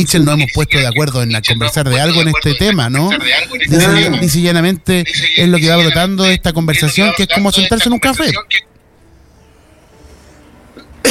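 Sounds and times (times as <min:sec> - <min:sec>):
speech: 0:00.0 - 0:08.7
person coughing sharply: 0:03.7 - 0:04.2.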